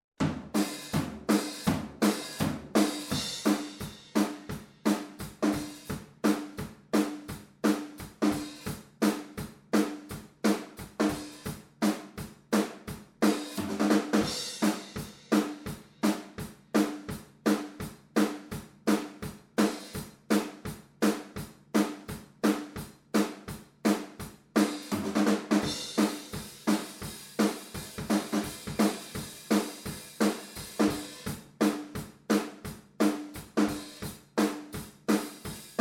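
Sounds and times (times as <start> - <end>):
drums recorded in mono ORTF: 0.0 - 35.7.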